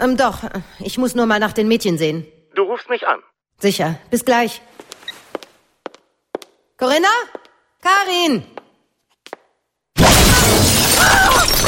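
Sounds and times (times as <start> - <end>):
speech: 0.0 - 4.9, 6.8 - 8.6
conservatory windows shattering during a break-in: 10.0 - 11.6.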